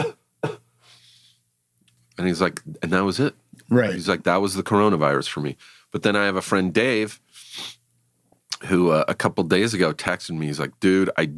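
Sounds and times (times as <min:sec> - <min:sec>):
person imitating dry cough: 0:00.0 - 0:00.6
breathy exhale: 0:00.8 - 0:01.4
speech: 0:02.2 - 0:07.8, 0:08.6 - 0:11.3.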